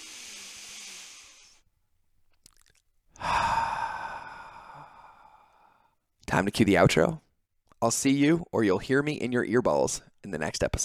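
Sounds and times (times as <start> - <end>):
person taking a deep breath: 0.0 - 1.6, 3.2 - 6.0
speech: 6.4 - 7.2, 7.8 - 10.8.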